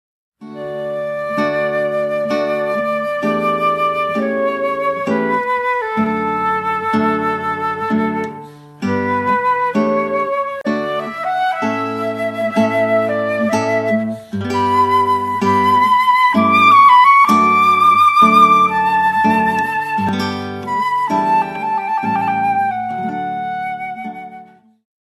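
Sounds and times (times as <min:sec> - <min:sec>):
guitar and flute playing slowly: 0:00.4 - 0:24.8.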